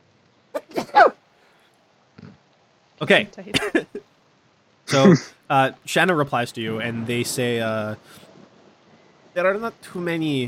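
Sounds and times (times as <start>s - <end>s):
loud sneeze with sharp inhaled buildup: 0.6s - 1.2s, 4.9s - 5.3s
speech: 3.0s - 4.1s, 4.9s - 8.2s, 9.4s - 10.4s.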